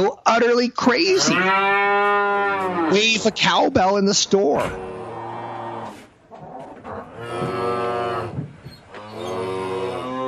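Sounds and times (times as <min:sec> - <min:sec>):
speech: 0:00.0 - 0:04.9
cows mooing in long drawn-out calls: 0:01.1 - 0:03.7, 0:04.6 - 0:10.2.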